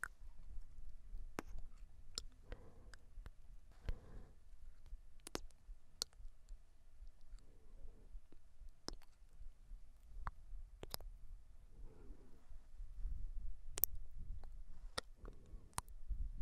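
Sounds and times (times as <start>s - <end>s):
low soft rumble: 0.1s - 16.4s
wet ASMR mouth clicks and lip smacks: 0.8s - 4.0s, 4.8s - 7.5s, 8.2s - 9.3s, 10.0s - 11.2s, 13.7s - 16.0s.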